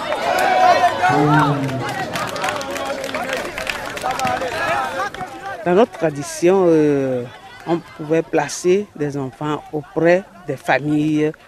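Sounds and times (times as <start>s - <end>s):
crowd clapping at the edge of a sports field: 0.0s - 8.3s
lively crowd shouting and chattering along the edge of a sports field: 0.0s - 11.4s
speech: 1.1s - 1.8s, 5.6s - 11.4s.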